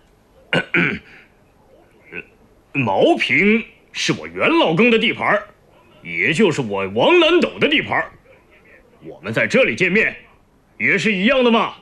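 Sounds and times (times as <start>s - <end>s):
man clearing throat: 0.5s - 1.2s
man coughing: 0.5s - 1.2s
speech: 0.7s - 1.2s, 2.1s - 8.2s, 9.0s - 10.2s, 10.8s - 11.7s.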